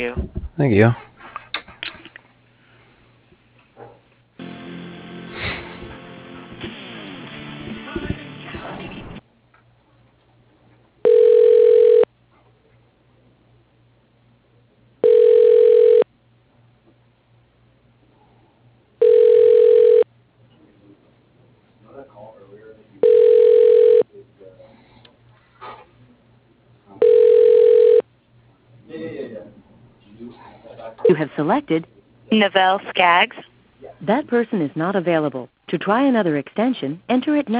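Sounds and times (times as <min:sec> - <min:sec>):
speech: 0:00.0 - 0:01.0, 0:31.5 - 0:33.3, 0:34.1 - 0:37.5
telephone line ring tones while a call is transferred to voicemail: 0:11.0 - 0:12.1, 0:15.0 - 0:16.0, 0:19.0 - 0:20.0, 0:23.0 - 0:24.0, 0:27.0 - 0:28.0.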